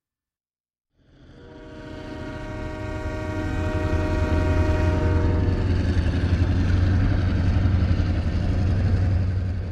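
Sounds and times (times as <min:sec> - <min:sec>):
train rumbling and clattering: 0:01.0 - 0:09.7
long sustained train whistle: 0:01.4 - 0:05.8.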